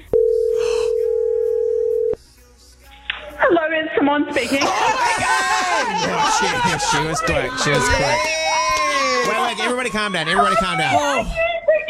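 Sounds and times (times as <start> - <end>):
ringback tone on an outgoing phone call to Portugal: 0.0 - 2.2
speech: 4.1 - 8.4, 9.6 - 11.5
laughter: 4.4 - 9.9.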